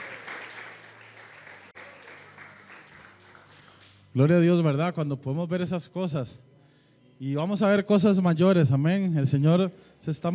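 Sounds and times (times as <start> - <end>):
audience applause: 0.0 - 4.0
speech: 4.2 - 6.5, 7.2 - 10.3.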